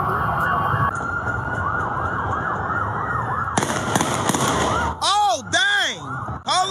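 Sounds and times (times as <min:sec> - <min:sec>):
siren wailing: 0:00.0 - 0:06.6
gunshots fired outdoors at police: 0:03.6 - 0:04.9.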